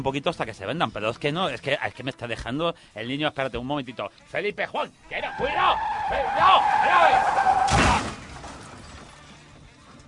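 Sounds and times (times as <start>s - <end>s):
speech: 0.0s - 8.1s
car tire screeching while skidding: 5.1s - 8.8s
loud crash of car impact: 7.1s - 8.8s.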